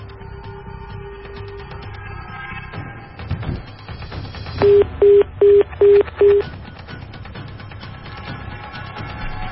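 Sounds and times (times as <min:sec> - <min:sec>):
cell phone call dialing tones not connecting: 0:04.6 - 0:06.4.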